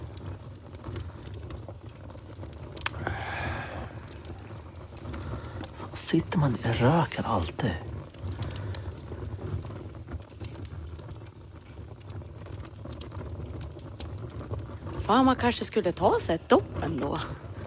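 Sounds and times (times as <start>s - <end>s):
campfire crackling and popping: 0.0s - 17.6s
speech: 6.1s - 7.9s, 15.1s - 17.4s.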